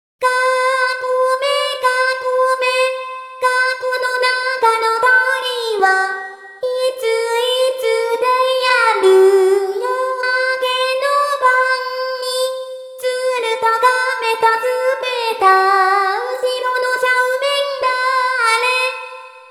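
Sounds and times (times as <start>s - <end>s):
person singing a children's song: 0.2s - 19.4s.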